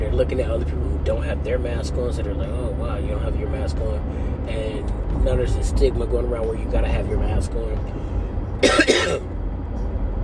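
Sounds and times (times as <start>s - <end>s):
low rumble: 0.0s - 10.2s
speech: 0.2s - 9.0s
short cough: 8.6s - 9.3s.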